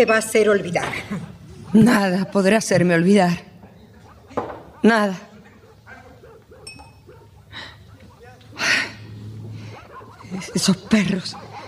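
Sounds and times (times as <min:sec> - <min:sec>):
speech: 0:00.0 - 0:03.5, 0:04.8 - 0:05.3, 0:10.3 - 0:11.4
dogs barking: 0:00.9 - 0:11.6.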